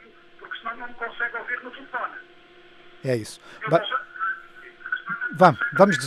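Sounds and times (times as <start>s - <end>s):
caller's radio playing through a telephone line during a radio call-in: 0.0s - 2.3s, 3.5s - 6.0s
speech: 0.7s - 2.4s, 3.0s - 4.1s, 5.3s - 6.0s.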